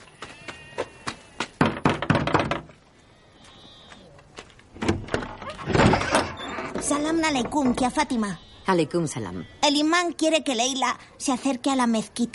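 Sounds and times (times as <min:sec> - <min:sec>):
knocking on a house door in a village street: 0:01.6 - 0:02.7
door being opened: 0:04.7 - 0:08.1
speech: 0:06.9 - 0:12.3.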